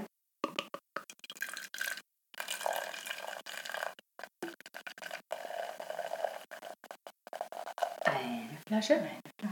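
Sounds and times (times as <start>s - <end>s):
apple wine pouring into a pot: 1.1s - 8.1s
speech: 8.2s - 9.2s.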